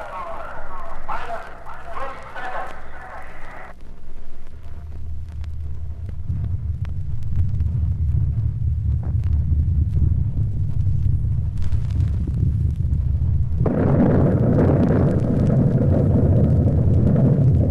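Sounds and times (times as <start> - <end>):
deep rumbling roar of an atomic bomb explosion: 5.4 - 17.7.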